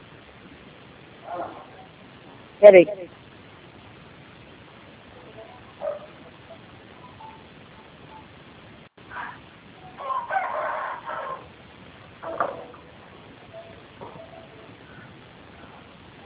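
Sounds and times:
steady hiss: 0:00.0 - 0:16.2
speech: 0:01.3 - 0:01.7, 0:02.6 - 0:03.2
rooster crowing: 0:09.1 - 0:11.6.

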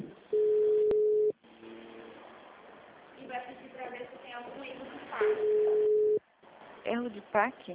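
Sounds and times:
telephone ringing tone on an outgoing call: 0:00.4 - 0:01.3, 0:05.4 - 0:06.2
speech: 0:07.0 - 0:07.7.

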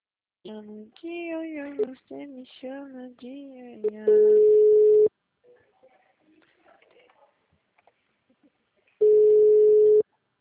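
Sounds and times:
speech: 0:00.4 - 0:05.0
telephone tone after a dropped call: 0:04.1 - 0:05.1, 0:09.0 - 0:10.0.

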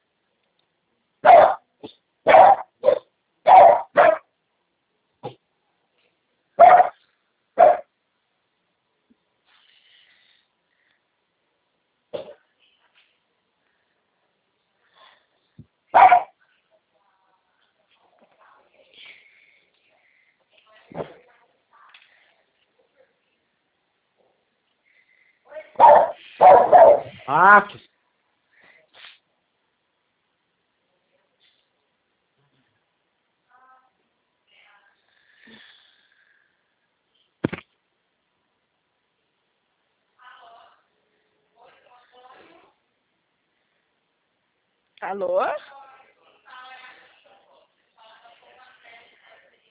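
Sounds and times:
dog barking: 0:01.2 - 0:04.3, 0:06.6 - 0:07.0, 0:07.6 - 0:07.9, 0:15.9 - 0:16.4, 0:25.6 - 0:27.3
speech: 0:27.4 - 0:27.9, 0:45.1 - 0:45.6.

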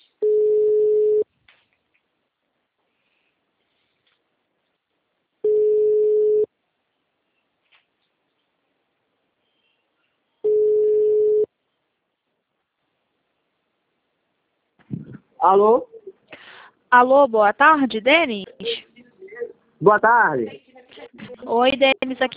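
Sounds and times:
telephone tone after a dropped call: 0:00.2 - 0:01.2, 0:05.5 - 0:06.5, 0:10.4 - 0:11.5
speech: 0:15.4 - 0:16.0, 0:16.9 - 0:18.7, 0:19.8 - 0:20.6, 0:21.5 - 0:22.3.

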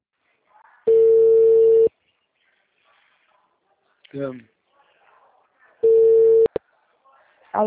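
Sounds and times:
telephone busy tone after a dropped call: 0:00.9 - 0:01.9, 0:05.8 - 0:06.5
speech: 0:04.1 - 0:04.6.

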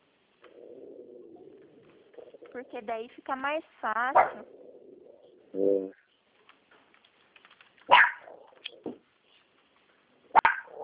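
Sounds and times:
speech: 0:02.6 - 0:04.7, 0:05.5 - 0:06.0
small female pet dog barking: 0:04.2 - 0:04.5, 0:07.9 - 0:08.5, 0:10.3 - 0:10.8.

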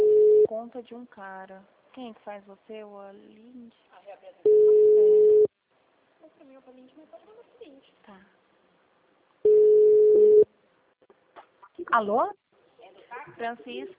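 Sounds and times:
telephone line tones on a dropped phone call: 0:00.0 - 0:00.5, 0:04.5 - 0:05.5, 0:09.5 - 0:10.5
speech: 0:00.8 - 0:05.2, 0:06.3 - 0:08.4, 0:11.8 - 0:12.4, 0:13.2 - 0:13.9.

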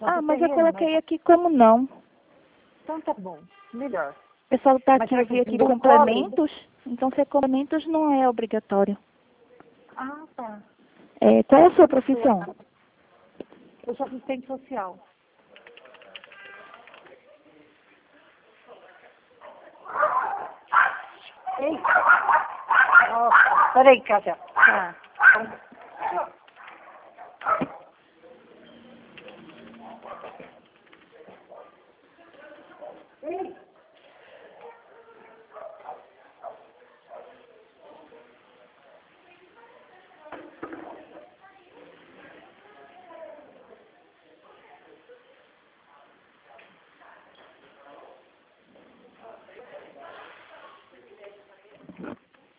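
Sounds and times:
speech: 0:00.2 - 0:02.0, 0:02.9 - 0:09.1, 0:10.0 - 0:12.6, 0:13.8 - 0:15.1, 0:21.6 - 0:26.3
two dogs snarling and barking at each other: 0:19.5 - 0:30.6
dogs making grunting growls: 0:28.4 - 0:30.6.

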